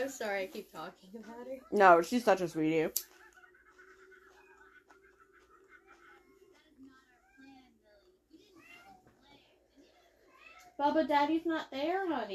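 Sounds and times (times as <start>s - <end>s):
speech: 0.0s - 3.1s, 10.8s - 12.3s
laughter: 3.0s - 7.0s
cat meowing plaintively: 8.5s - 9.1s, 10.2s - 10.8s.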